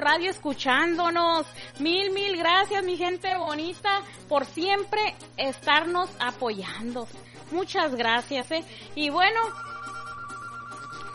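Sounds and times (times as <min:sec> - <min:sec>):
speech: 0:00.1 - 0:09.7
telephone ringing with high electronic tone: 0:09.5 - 0:11.1.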